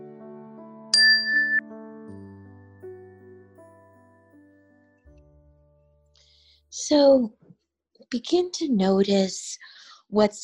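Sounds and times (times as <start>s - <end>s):
meditation chime ringing: 1.0s - 1.6s
speech: 6.7s - 7.4s, 8.1s - 10.4s.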